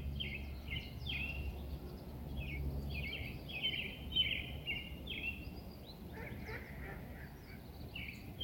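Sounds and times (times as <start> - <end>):
wild birds calling with honking notes in an outdoor park in Vancouver: 0.0 - 8.4.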